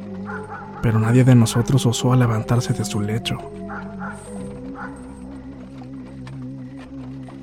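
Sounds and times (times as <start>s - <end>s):
dogs barking: 0.0s - 5.7s
several village dogs howling: 0.0s - 7.4s
speech: 0.3s - 3.8s.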